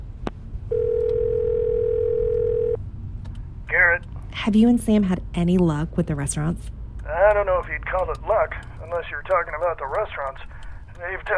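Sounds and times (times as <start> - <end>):
telephone dial tone while placing a call: 0.7 - 2.8
speech: 4.4 - 11.3.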